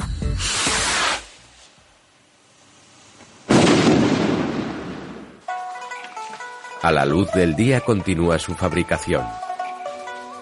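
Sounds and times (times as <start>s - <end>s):
music: 0.0s - 1.0s, 5.5s - 10.4s
firework rockets launching with hissing whoosh: 0.4s - 1.6s, 3.4s - 5.4s
speech: 6.8s - 9.4s.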